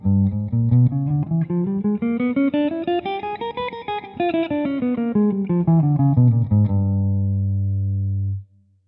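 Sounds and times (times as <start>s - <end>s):
G diminished scales played: 0.0s - 8.4s.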